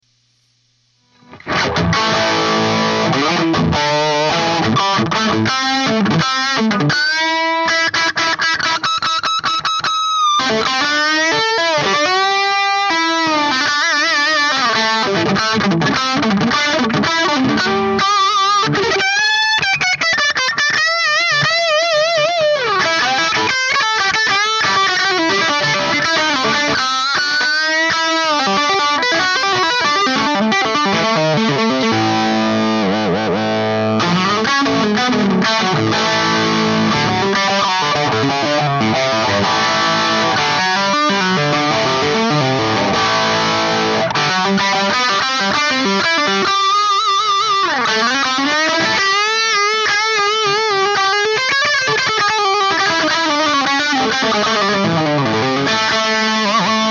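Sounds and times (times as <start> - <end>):
dry Plexi guitar noodling: 1.2 - 9.4, 10.4 - 56.8.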